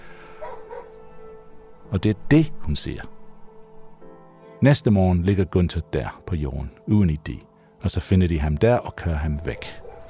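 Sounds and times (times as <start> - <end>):
dog barking: 0.4 - 1.0, 9.5 - 10.0
speech: 1.9 - 3.2, 4.6 - 9.8.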